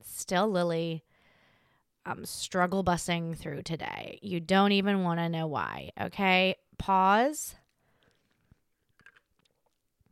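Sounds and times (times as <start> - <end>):
speech: 0.0 - 1.1, 2.0 - 7.6
person sipping hot coffee: 7.9 - 10.0
swallowing: 7.9 - 10.0
wet mouth clicks: 8.0 - 9.8.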